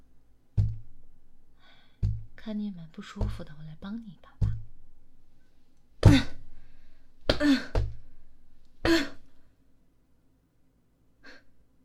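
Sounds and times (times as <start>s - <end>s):
soft breathing: 1.5s - 2.1s, 5.4s - 8.4s
speech: 2.5s - 4.4s
person coughing while struggling for breath: 6.0s - 6.4s, 8.9s - 9.3s.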